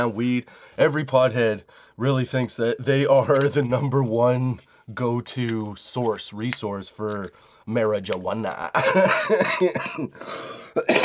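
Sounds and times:
speech: 0.0 - 11.0
harsh hacking coughing: 8.8 - 11.0
throat clearing: 9.4 - 11.0.

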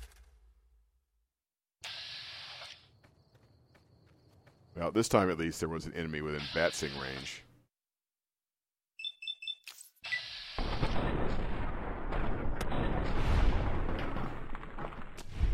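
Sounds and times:
speech: 4.8 - 7.5
high electronic beeps in a video game: 9.0 - 10.4
grenade explosion in a video game: 10.6 - 15.5.

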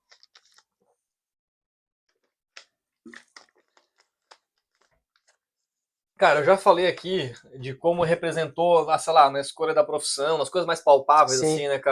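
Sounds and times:
person sipping water: 0.0 - 0.8, 2.2 - 5.4
small mouth clicks: 2.5 - 5.3
wet gulping swallows of water: 2.5 - 5.4
speech: 6.2 - 11.9.

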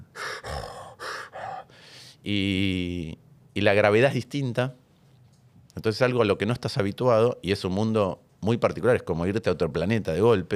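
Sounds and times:
voice imitating breathing through a scuba regulator: 0.0 - 2.0
speech: 2.2 - 4.8, 5.8 - 10.5.

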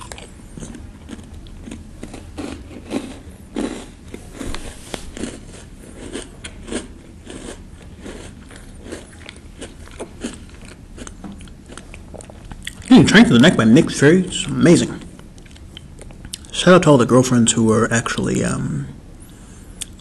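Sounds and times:
crisp crunching and chewing on food: 0.0 - 13.6, 14.9 - 16.6
speech: 13.0 - 15.0, 16.6 - 19.0.

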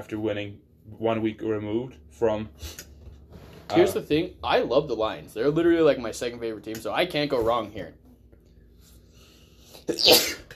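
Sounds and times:
speech: 0.0 - 2.9, 3.7 - 8.0, 9.9 - 10.4
sneeze: 9.8 - 10.5.

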